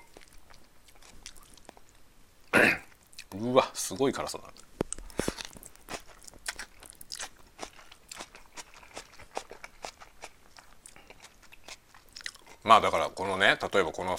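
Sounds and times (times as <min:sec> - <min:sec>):
crunchy chewing of spicy instant bag noodles with lightly boiled bean sprouts: 0:00.0 - 0:02.0, 0:04.5 - 0:13.2
speech: 0:03.4 - 0:04.7, 0:12.7 - 0:14.1.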